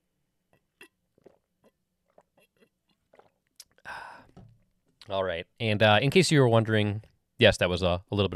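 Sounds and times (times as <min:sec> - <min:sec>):
mouth clicks and gulps: 0:00.5 - 0:05.1
person sipping water: 0:00.5 - 0:05.1
breathy exhale: 0:03.8 - 0:04.4
speech: 0:05.1 - 0:08.3.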